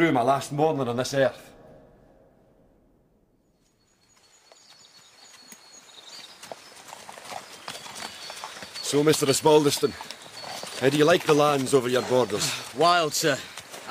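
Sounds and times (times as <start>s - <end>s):
speech: 0.0s - 1.5s, 8.9s - 10.2s, 10.8s - 13.9s
horses walking under riders, hooves clip-clopping: 3.9s - 13.9s.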